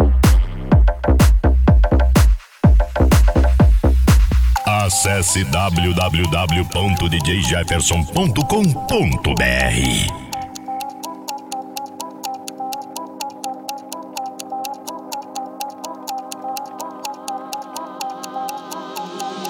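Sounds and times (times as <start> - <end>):
clock ticking: 0.2 - 19.4
sustained musical tone with a shifting melody: 4.6 - 19.4
speech: 5.0 - 10.2.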